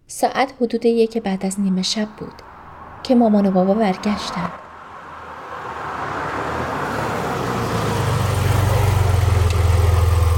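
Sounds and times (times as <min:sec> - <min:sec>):
speech: 0:00.1 - 0:04.6
car engine arriving and idling: 0:04.0 - 0:10.3.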